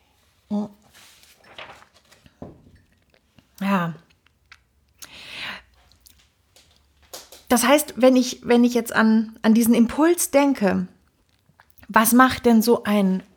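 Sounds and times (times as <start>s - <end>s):
speech: 3.7s - 4.0s, 7.5s - 11.0s, 11.9s - 13.3s
soft mouth clicks: 4.2s - 5.3s.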